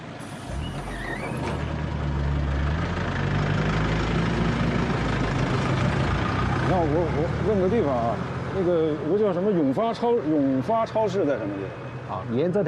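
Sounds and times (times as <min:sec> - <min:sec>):
bus engine idling: 0:00.0 - 0:12.2
high squeal: 0:00.2 - 0:01.9
speech: 0:06.8 - 0:12.6.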